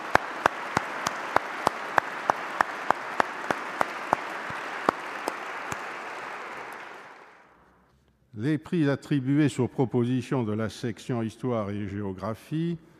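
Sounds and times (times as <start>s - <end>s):
sharp evenly spaced louder claps: 0.0s - 7.5s
audience applauding: 0.0s - 7.6s
speech: 8.4s - 12.9s.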